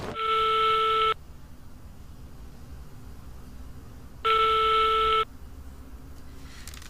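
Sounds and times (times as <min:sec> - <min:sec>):
telephone ringing unanswered through the earpiece: 0:00.1 - 0:01.2, 0:04.3 - 0:05.3.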